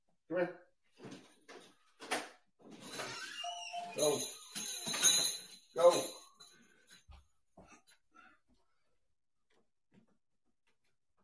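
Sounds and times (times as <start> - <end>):
speech: 0.3 - 0.6, 4.0 - 4.4, 5.8 - 6.2
bright back doorbell chime rung by a puppy: 3.4 - 5.4.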